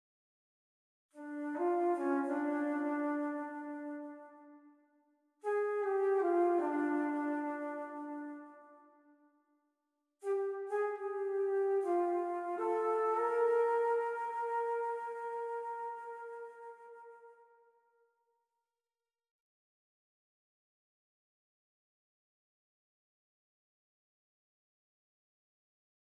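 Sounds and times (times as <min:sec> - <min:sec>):
alto flute: 0:01.2 - 0:04.7, 0:05.4 - 0:09.0, 0:10.2 - 0:17.8.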